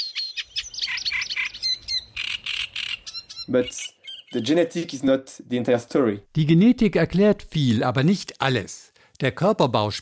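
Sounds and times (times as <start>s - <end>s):
reed warbler songs: 0.0s - 5.0s
speech: 3.5s - 10.0s.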